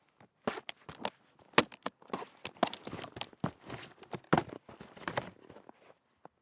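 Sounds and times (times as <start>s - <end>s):
snowboard bindings unstrapping: 0.5s - 5.4s.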